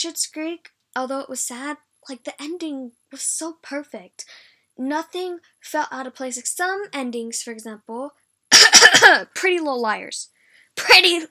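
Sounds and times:
speech: 0.0 - 11.2
fake cough: 8.5 - 9.3.

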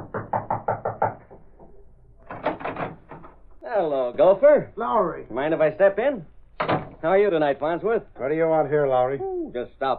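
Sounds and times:
firm knocking on a door: 0.0 - 3.3
speech: 3.7 - 9.9.

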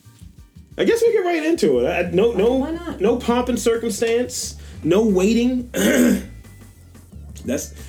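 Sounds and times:
speech: 0.8 - 6.3, 7.4 - 7.8
throat clearing: 5.7 - 6.4
person coughing: 5.8 - 6.4.

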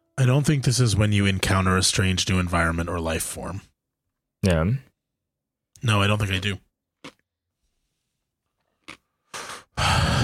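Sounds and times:
speech: 0.2 - 3.7, 4.4 - 4.9, 5.8 - 7.2
crunchy chewing: 8.7 - 9.2.

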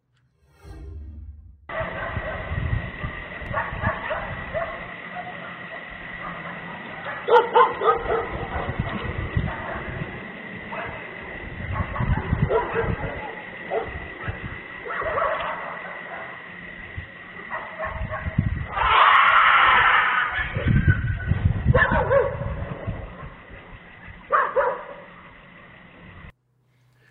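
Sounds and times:
dogs barking: 1.7 - 23.5, 24.2 - 25.3
loud sharp scream: 18.7 - 20.6.

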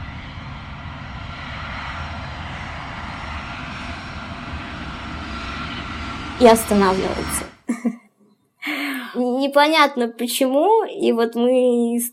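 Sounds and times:
airplane engines roaring as airplane accelerates down the runway: 0.0 - 7.7
speech: 6.4 - 7.5, 9.4 - 12.1.

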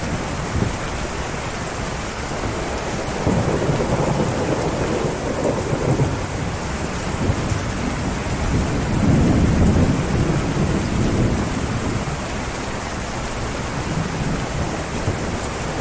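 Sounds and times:
steady dense rainfall: 0.0 - 15.7
deep rumbling: 1.7 - 11.9.

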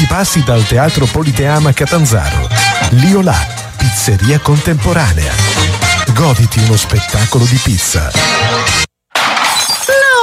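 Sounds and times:
speech: 0.1 - 8.9
smartphone screen shattering: 9.1 - 10.0
scattering debris: 9.1 - 10.1.

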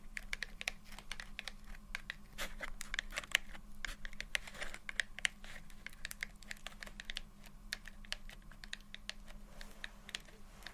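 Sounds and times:
gentle tapping and scratching: 0.0 - 10.7
steady low hum: 0.0 - 10.7.

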